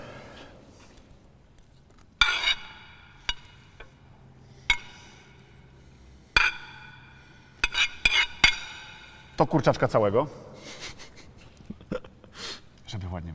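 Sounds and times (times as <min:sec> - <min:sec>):
metal utensil clinking and scraping a sauce pan while stirring shrimp and chicken into sauce: 0:02.2 - 0:04.0, 0:04.6 - 0:05.4, 0:06.4 - 0:09.4
speech: 0:09.4 - 0:10.8.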